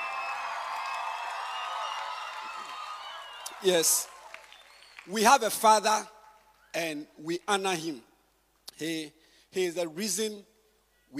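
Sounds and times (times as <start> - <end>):
large audience clapping: 0.0 - 5.3
speech: 3.6 - 4.1, 5.1 - 8.1, 8.8 - 10.5.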